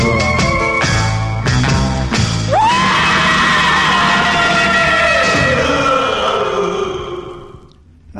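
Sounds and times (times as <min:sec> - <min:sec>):
1960s rock and roll record: 0:00.0 - 0:06.6
person screaming: 0:02.5 - 0:07.2.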